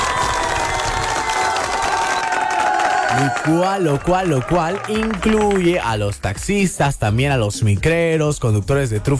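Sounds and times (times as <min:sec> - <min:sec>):
crowd applauding and cheering for the day's workers: 0:00.0 - 0:06.7
speech: 0:03.2 - 0:09.1.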